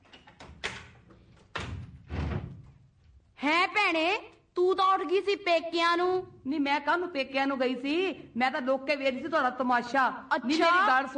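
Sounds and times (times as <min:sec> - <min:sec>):
heavier bang of a door being opened: 0:00.0 - 0:02.9
speech: 0:03.4 - 0:11.1.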